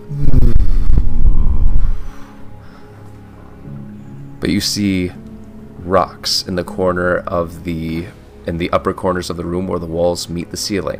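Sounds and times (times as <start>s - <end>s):
low pulsing hum: 0.0s - 2.6s
speech: 4.4s - 5.2s, 5.9s - 10.9s.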